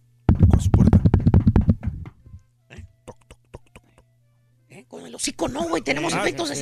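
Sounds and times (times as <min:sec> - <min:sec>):
knuckles knocking on a door: 0:00.3 - 0:02.2
speech: 0:05.2 - 0:06.6.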